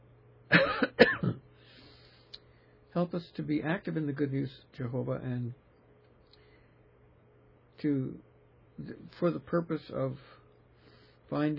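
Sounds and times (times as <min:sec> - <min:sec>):
person coughing from a tickle in the throat: 0:00.5 - 0:01.5
speech: 0:03.0 - 0:05.6, 0:07.8 - 0:10.4, 0:11.3 - 0:11.5.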